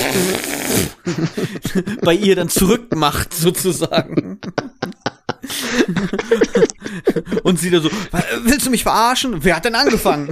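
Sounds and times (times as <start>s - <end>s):
person blowing a wet raspberry with the lips: 0.0s - 1.0s
speech: 0.2s - 10.3s
laughter: 1.0s - 8.2s, 9.7s - 10.3s.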